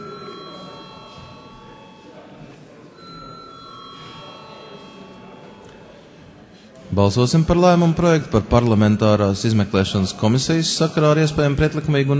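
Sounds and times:
bell rung to call a vote: 0:00.0 - 0:06.8
murmur of people talking in a large room: 0:00.0 - 0:12.1
speech: 0:06.9 - 0:12.1.

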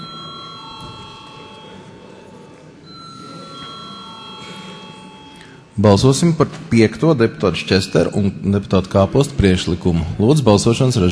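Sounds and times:
parliament chamber bell ringing before vote: 0:00.0 - 0:05.7
murmur of a large parliament chamber: 0:00.0 - 0:11.1
speech: 0:05.8 - 0:11.1.

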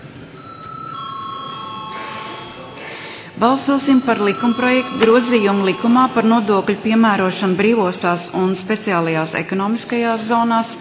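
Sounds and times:
electric bell ringing in a parliament chamber to call a vote: 0:00.4 - 0:07.4
speech: 0:03.4 - 0:10.8.

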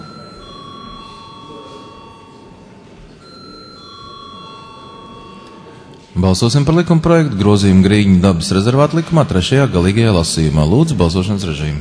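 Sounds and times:
electric bell ringing to call members of parliament to a vote: 0:00.0 - 0:07.4
broad noise: 0:00.0 - 0:11.7
speech: 0:06.2 - 0:11.7.

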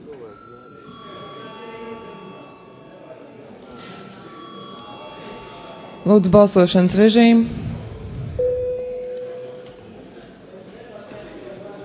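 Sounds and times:
murmur of voices in the chamber: 0:00.0 - 0:11.8
parliamentary session bell buzzing: 0:00.3 - 0:06.3, 0:08.4 - 0:09.7
speech: 0:06.0 - 0:07.6.

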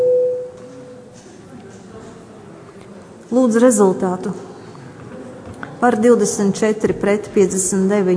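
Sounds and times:
electronic parliamentary voting bell signal: 0:00.0 - 0:00.6
speech: 0:03.3 - 0:04.5, 0:05.8 - 0:08.1.

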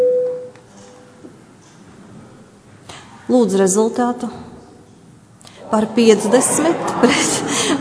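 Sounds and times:
electronic voting bell tone in a parliament session: 0:00.0 - 0:00.5
quiet ambience: 0:00.0 - 0:07.7
speech: 0:03.3 - 0:04.5, 0:05.7 - 0:07.5
laughter: 0:06.0 - 0:07.7.

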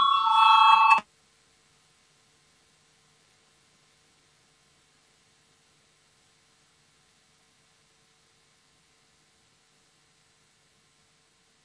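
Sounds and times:
parliamentary voting bell ringing in the Saeima: 0:00.0 - 0:01.0.

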